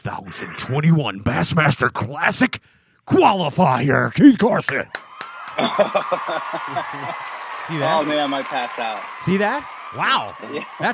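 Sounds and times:
speech: 0:00.0 - 0:05.0, 0:05.6 - 0:10.9
crowd applause: 0:04.9 - 0:10.9
excited voices whooping: 0:05.0 - 0:10.9
laughter: 0:05.4 - 0:09.1, 0:10.0 - 0:10.9.

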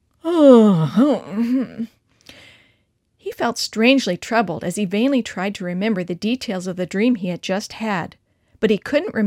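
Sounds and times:
person yawning loudly: 0:00.2 - 0:01.7
speech: 0:01.0 - 0:02.0, 0:03.4 - 0:09.2.

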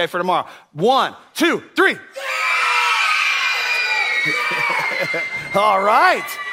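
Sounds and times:
speech: 0:00.0 - 0:02.4, 0:04.2 - 0:06.5
group of children screaming on a count: 0:02.2 - 0:06.5
laughter: 0:04.2 - 0:05.6.

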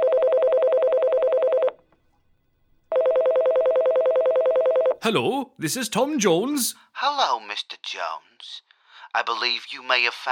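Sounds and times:
telephone ringing with electronic warbling bursts: 0:00.0 - 0:01.8, 0:02.9 - 0:05.0
speech: 0:05.0 - 0:10.3.

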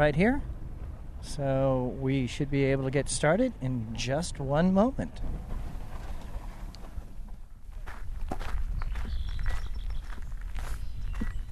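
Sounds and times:
speech: 0:00.0 - 0:00.5, 0:01.2 - 0:05.6
footsteps of someone walking up to wetlands from a parking lot: 0:07.8 - 0:11.5.

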